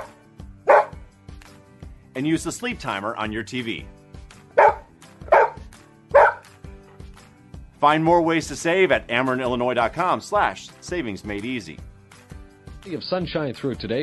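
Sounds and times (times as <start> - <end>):
faint music: 0.0 - 14.0
dog barking: 0.7 - 1.0, 4.6 - 6.5
speech: 2.2 - 4.0, 7.8 - 11.9, 12.8 - 14.0.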